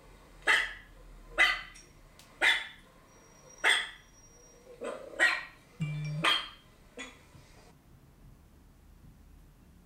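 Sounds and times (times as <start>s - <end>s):
dog barking sharply with a growly note: 0.4s - 1.8s, 2.4s - 2.8s, 3.6s - 5.6s, 6.2s - 7.2s.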